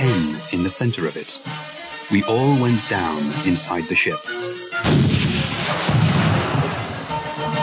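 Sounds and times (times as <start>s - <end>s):
speech: 0.7s - 5.4s
heavy cannon fire with deep rumbling explosions: 4.8s - 7.3s.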